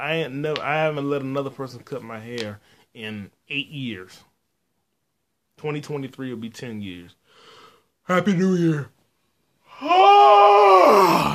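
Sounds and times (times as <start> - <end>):
speech: 0.0 - 4.3, 5.6 - 7.5, 8.1 - 9.0, 9.8 - 11.3
person giving a big yawn: 9.7 - 11.3.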